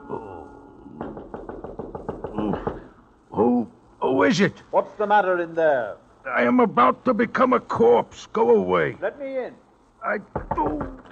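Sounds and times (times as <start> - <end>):
speech: 0.1 - 0.3, 4.2 - 10.9
sharp knocks on a door: 1.0 - 2.9, 10.3 - 11.1.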